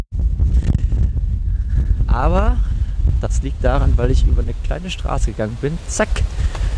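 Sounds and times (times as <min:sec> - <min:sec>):
wind buffeting an outdoor microphone: 0:00.1 - 0:06.7
speech: 0:02.1 - 0:02.7, 0:03.3 - 0:06.7.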